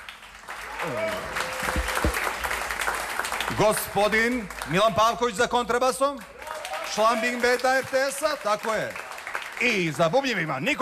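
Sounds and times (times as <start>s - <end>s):
audience applause at a live jazz concert: 0.0s - 4.8s, 6.4s - 10.0s
speech: 0.8s - 1.2s, 3.6s - 6.3s, 6.9s - 9.0s, 9.6s - 10.8s.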